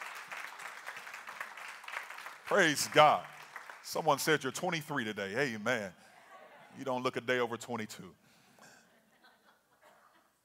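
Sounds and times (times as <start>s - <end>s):
crowd clapping for a birthday: 0.0s - 5.4s
speech: 2.5s - 3.3s, 3.9s - 6.1s, 6.8s - 8.2s.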